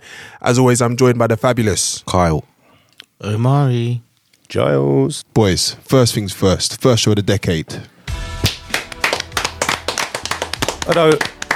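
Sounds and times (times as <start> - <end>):
speech: 0.4 - 2.5, 3.2 - 8.0, 10.9 - 11.4
hands clapping: 8.4 - 11.5.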